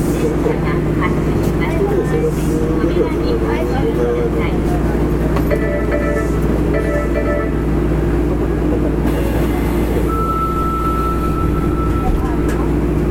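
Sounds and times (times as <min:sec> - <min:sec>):
faint voices murmuring inside the subway car: 0:00.0 - 0:06.5
Fukuoka city subway 3000 series train running: 0:00.0 - 0:13.1
whining tones: 0:09.1 - 0:12.4.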